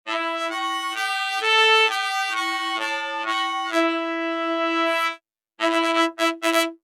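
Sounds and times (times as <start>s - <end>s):
robotic RnB horn section: 0.1s - 6.8s.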